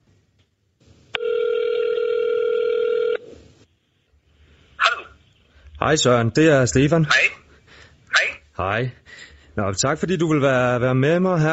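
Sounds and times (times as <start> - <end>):
buzzy phone ringback tone while placing a call: 1.2 - 3.2
speech: 5.8 - 7.4, 8.6 - 11.5.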